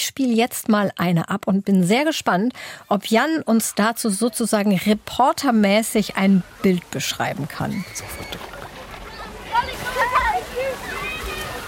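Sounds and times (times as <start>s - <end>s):
speech: 0.1s - 8.5s
water sloshing and splashing at a swimming pool: 4.2s - 11.6s
children running back and forth: 6.1s - 11.6s
children shouting and calling out in high voices: 7.6s - 11.6s
person jumping into swimming pool water: 7.7s - 11.6s.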